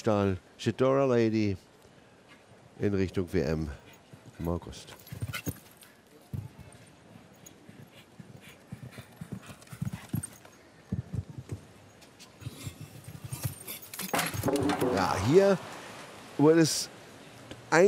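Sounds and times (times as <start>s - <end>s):
speech: 0.0s - 1.7s, 2.8s - 3.8s, 4.4s - 5.4s, 15.0s - 15.7s, 16.4s - 17.0s
horse hoofbeats galloping in show jumping arena: 3.7s - 14.8s.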